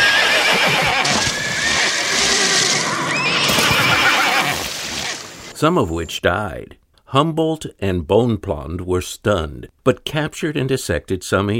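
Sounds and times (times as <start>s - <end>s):
wild horses neighing and whinnying in a river: 0.0s - 5.3s
wild horse hooves splashing through river water: 1.0s - 5.5s
speech: 5.6s - 11.5s.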